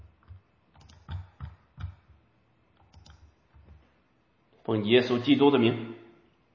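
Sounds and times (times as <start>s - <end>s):
typing on a computer keyboard: 0.1s - 2.2s, 2.8s - 3.8s
speech: 4.7s - 6.0s.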